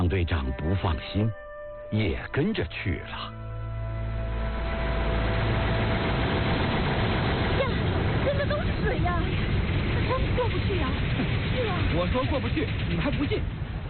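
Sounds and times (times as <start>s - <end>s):
speech: 0.1s - 3.4s, 8.9s - 13.6s
tractor engine running while towing a harvester: 3.3s - 13.8s.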